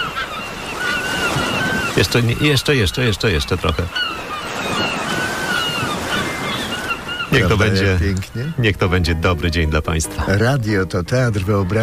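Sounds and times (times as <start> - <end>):
sea surf washing against the shore: 0.0 - 8.7
faint bird calls: 0.0 - 10.2
speech: 2.0 - 4.2, 7.4 - 11.8.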